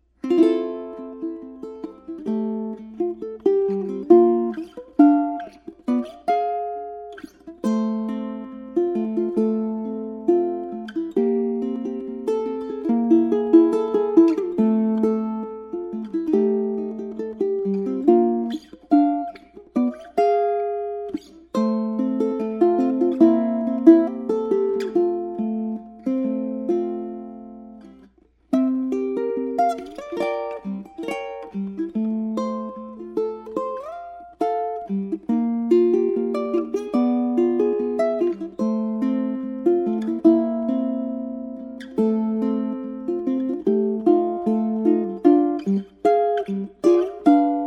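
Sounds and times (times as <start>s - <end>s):
ukulele playing: 0.0s - 47.6s.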